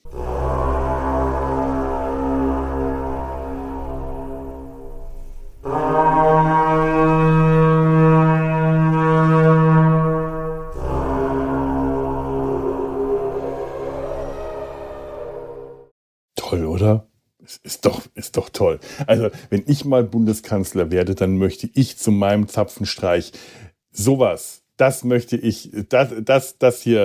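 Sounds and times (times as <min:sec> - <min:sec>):
carnyx Iron Age war horn with dragon-head bell sounding: 0:00.0 - 0:15.9
speech: 0:18.7 - 0:27.0.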